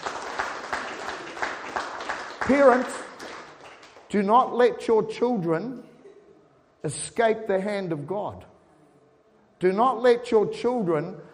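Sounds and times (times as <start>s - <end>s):
crowd applauding in a large room: 0.0s - 4.2s
speech: 2.5s - 3.0s, 4.1s - 5.9s, 6.8s - 8.5s, 9.6s - 11.3s.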